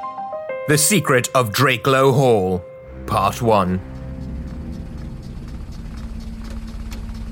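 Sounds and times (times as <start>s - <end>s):
speech: 0.7s - 3.9s
motor car engine rumbling: 3.0s - 7.3s.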